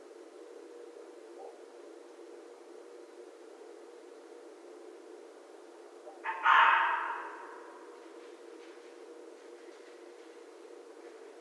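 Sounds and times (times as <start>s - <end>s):
red fox rough scratchy bark: 6.0s - 7.8s.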